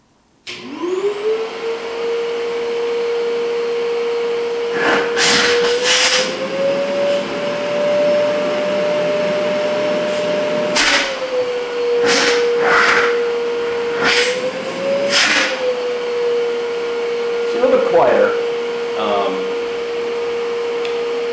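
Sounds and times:
10-quart backpack vacuum cleaner motor whine: 0.4s - 21.3s
rushing suction noise of backpack vacuum cleaner: 4.7s - 16.4s.

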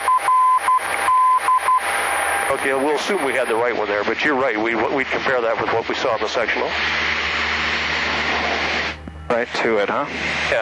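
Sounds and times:
Morse code tone beeps of a VOR station identifier: 0.0s - 1.9s
radio static: 2.4s - 10.6s
speech: 2.5s - 7.2s, 9.3s - 10.6s.

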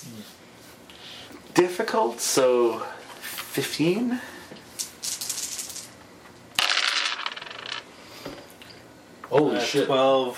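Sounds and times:
speech: 1.6s - 3.0s, 3.6s - 4.4s, 9.3s - 10.3s
dice rolled clattering onto a hard surface: 4.8s - 6.0s, 6.6s - 7.9s.

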